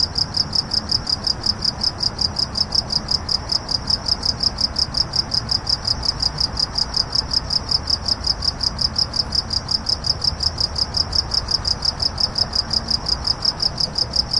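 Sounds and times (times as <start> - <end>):
crickets chirping: 0.0 - 14.3.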